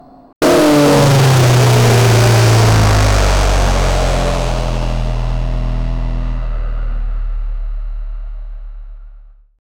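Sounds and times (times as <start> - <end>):
very loud modified diesel engine: 0.4 - 8.6.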